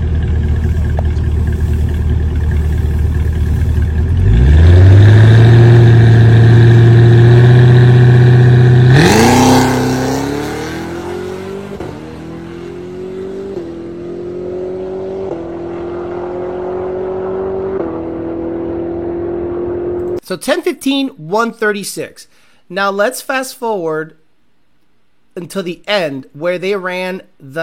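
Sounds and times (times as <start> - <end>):
4,400-pound car with stock cold air intake idling: 0.0 - 13.1
4,400-pound car launching hard and accelerating on a drag strip: 0.0 - 20.2
speech: 20.3 - 24.2, 25.4 - 27.6.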